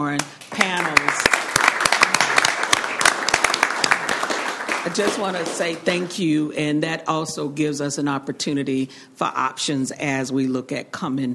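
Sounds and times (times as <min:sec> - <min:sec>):
speech: 0:00.0 - 0:01.4, 0:04.8 - 0:11.3
audience applause for panel participants at a community meeting: 0:00.5 - 0:06.1.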